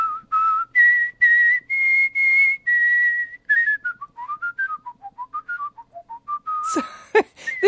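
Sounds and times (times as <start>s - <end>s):
whistled melody of a familiar children's tune: 0.0s - 7.6s.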